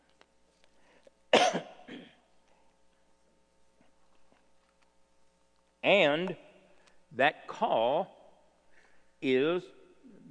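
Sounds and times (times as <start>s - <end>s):
person coughing: 1.3s - 2.2s
speech: 5.8s - 6.4s, 7.1s - 8.2s, 9.2s - 10.3s.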